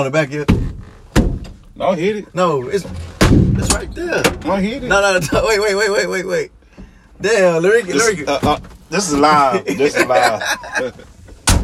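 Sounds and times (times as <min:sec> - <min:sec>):
speech: 0:00.0 - 0:00.6, 0:01.8 - 0:06.6, 0:07.2 - 0:11.1
truck door slamming shut hard: 0:00.5 - 0:01.8, 0:02.8 - 0:05.7, 0:11.3 - 0:11.6
laughter: 0:09.2 - 0:11.2.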